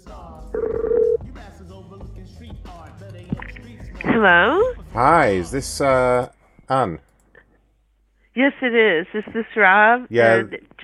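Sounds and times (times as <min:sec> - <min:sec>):
music: 0:00.0 - 0:06.3
telephone electronic ring tone: 0:00.6 - 0:01.2
speech: 0:01.8 - 0:07.1, 0:08.4 - 0:10.8.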